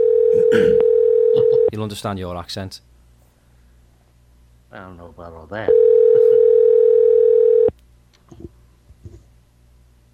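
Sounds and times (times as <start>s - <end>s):
telephone ringing tone on a call: 0.0s - 1.7s, 5.7s - 7.7s
speech: 1.8s - 2.9s, 4.7s - 6.1s.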